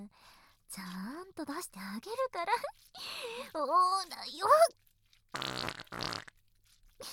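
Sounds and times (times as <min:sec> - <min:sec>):
speech: 0:00.7 - 0:04.8
loud buzzy farts: 0:05.3 - 0:06.4.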